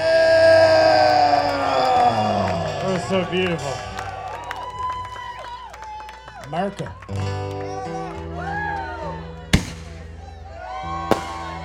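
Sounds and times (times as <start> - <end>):
crowd noise and indistinct voices: 0.0 - 11.6
speech: 3.1 - 3.9, 6.5 - 7.6
fireworks bangs: 9.5 - 11.6.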